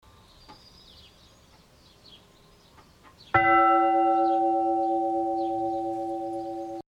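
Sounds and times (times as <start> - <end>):
bell ringing: 3.4 - 6.8.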